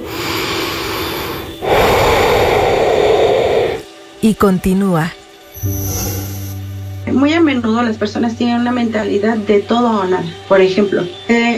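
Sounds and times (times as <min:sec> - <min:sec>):
person taking a deliberate breath during a pause in speech: 0:00.0 - 0:03.9
speech: 0:04.2 - 0:06.4, 0:07.1 - 0:11.5.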